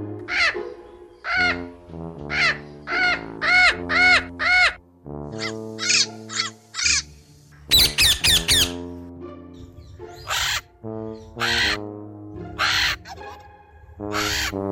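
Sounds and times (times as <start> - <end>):
loud harsh parrot calls: 0.3 - 7.1, 7.7 - 8.9, 10.2 - 11.9, 12.5 - 13.4, 14.1 - 14.6.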